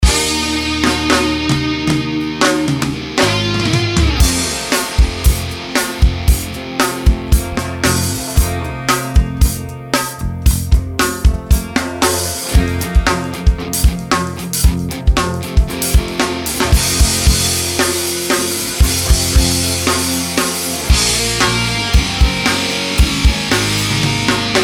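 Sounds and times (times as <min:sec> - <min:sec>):
hard rock music: 0:00.0 - 0:24.6.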